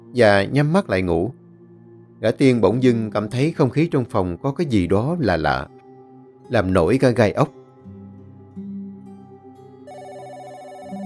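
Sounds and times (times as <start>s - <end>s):
speech: 0.1s - 1.4s, 2.2s - 5.8s, 6.5s - 7.6s
telephone ringtone: 9.9s - 11.0s.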